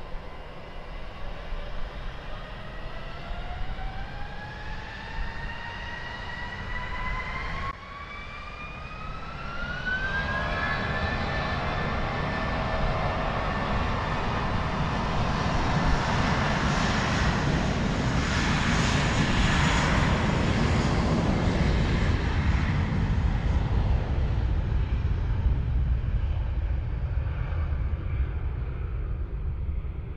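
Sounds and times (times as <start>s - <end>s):
jet airplane taking off with engines roaring: 0.0s - 30.1s.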